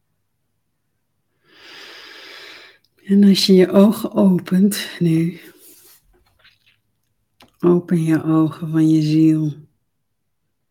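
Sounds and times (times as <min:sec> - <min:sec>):
slow deep breath during a guided meditation: 0:01.4 - 0:02.8
speech: 0:03.1 - 0:05.6, 0:07.6 - 0:09.7.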